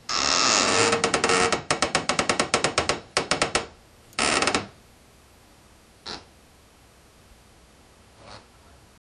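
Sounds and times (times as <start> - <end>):
distant building creak: 0.1 - 4.8.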